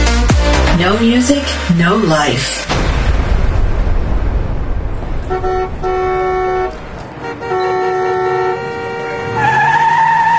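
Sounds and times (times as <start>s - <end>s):
speech: 0.8s - 2.9s
rumbling vehicle noise in traffic: 2.7s - 10.3s
sustained loud car-horn blasts: 5.2s - 9.8s
car cutting in and braking hard in traffic: 5.3s - 10.3s.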